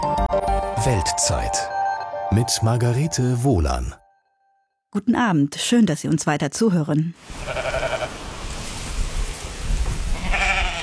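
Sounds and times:
speech: 0.8 - 4.0, 4.9 - 7.8
steady outdoor wash of wind or rain: 7.2 - 10.8
sheep bleating on the Faroe Islands: 7.3 - 8.2, 10.1 - 10.8.

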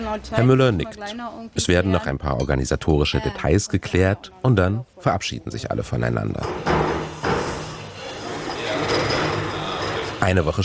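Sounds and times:
speech: 0.0 - 6.8, 10.2 - 10.6
wooden chairs scraping and thumping across a hard floor: 6.4 - 10.4.

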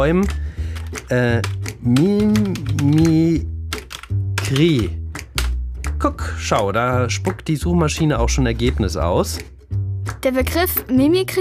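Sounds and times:
speech: 0.0 - 0.4, 1.1 - 3.5, 4.5 - 5.0, 6.0 - 9.5, 10.2 - 11.4
typing on a computer keyboard: 0.2 - 5.5.

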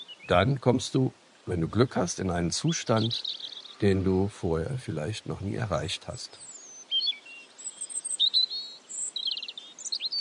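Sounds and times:
several birds singing and chirping outdoors: 0.0 - 10.2
speech: 0.3 - 6.5.

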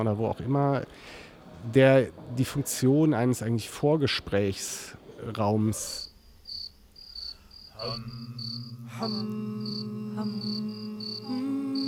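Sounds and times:
speech: 0.0 - 6.1, 7.8 - 11.4
crickets chirping: 0.0 - 11.8
group of people humming in low tones: 7.7 - 11.8.

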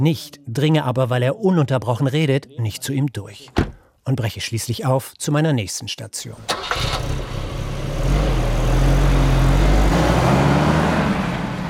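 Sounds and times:
speech: 0.0 - 7.4
car engine drone driving through the Texas Hill Country: 6.4 - 11.6
road rumble: 6.4 - 11.6.

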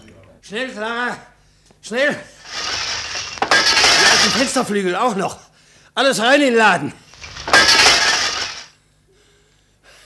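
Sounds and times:
speech: 0.5 - 2.4, 4.2 - 5.4, 6.0 - 7.0
broken glass shards shaken out of a bucket: 2.5 - 4.6, 7.2 - 8.7.

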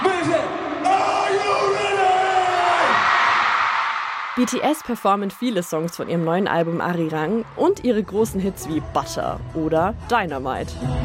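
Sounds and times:
large concert crowd of fans cheering and screaming: 0.0 - 7.6
speech: 4.4 - 11.0.

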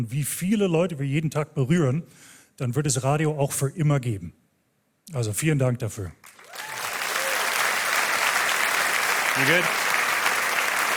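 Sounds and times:
speech: 0.0 - 4.4, 5.1 - 6.3, 9.4 - 9.8
audience applauding at a radio award ceremony: 6.2 - 10.9.

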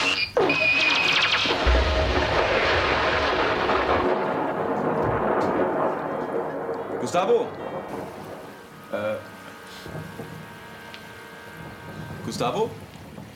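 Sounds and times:
sharp crack of a lightning strike: 0.8 - 13.3
loud thunder rumble with deep booms: 1.1 - 13.3
speech: 7.1 - 8.2, 8.9 - 9.3, 12.3 - 12.8.

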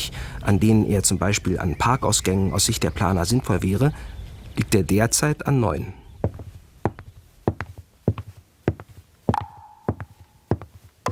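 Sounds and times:
speech: 0.4 - 6.0
footsteps walking: 6.2 - 11.1.

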